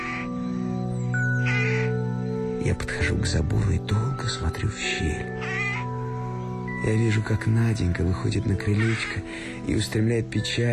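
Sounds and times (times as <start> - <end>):
rooks cawing noisily while settling to roost at dusk: 0.0 - 3.4, 5.2 - 6.7, 8.6 - 9.6
speech: 2.6 - 5.6, 6.8 - 10.7.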